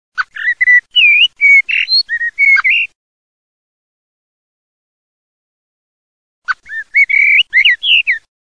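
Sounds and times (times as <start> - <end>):
blackbird: 0.2 - 3.0, 6.5 - 8.3.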